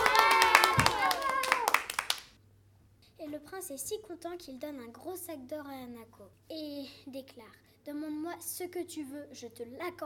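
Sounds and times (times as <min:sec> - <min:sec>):
cheerful voices calling out: 0:00.0 - 0:01.8
applause: 0:00.0 - 0:02.4
speech: 0:03.6 - 0:10.0.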